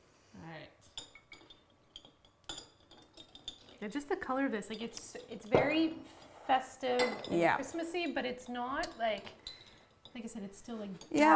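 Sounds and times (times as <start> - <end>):
fancy spoon clinking against glasses while stirring Christmas cocktails: 0.9 - 4.0, 4.6 - 5.6, 6.9 - 7.5, 8.1 - 11.3
speech: 3.8 - 9.4, 10.2 - 11.3.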